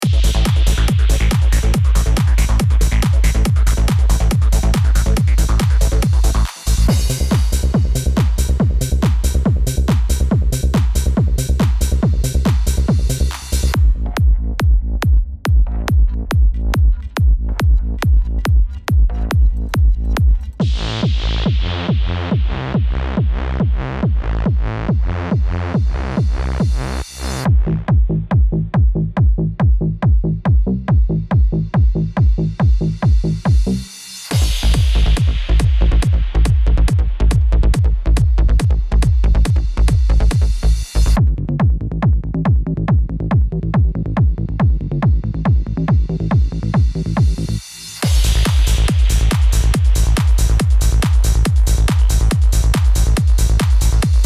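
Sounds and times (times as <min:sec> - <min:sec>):
trance bass from a Zebra2 synthesizer soundbank: 0:00.0 - 0:54.2.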